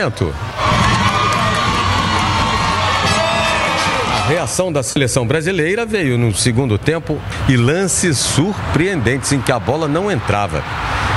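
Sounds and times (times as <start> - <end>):
speech: 0.0 - 0.5, 4.3 - 11.0
football stadium crowd cheering and shouting a goal: 0.4 - 4.8, 8.3 - 11.1.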